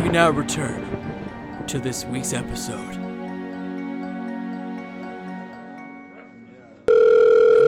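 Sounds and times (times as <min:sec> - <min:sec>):
speech: 0:00.1 - 0:00.9, 0:01.7 - 0:03.1
loud steady telephone line tone: 0:06.9 - 0:07.6.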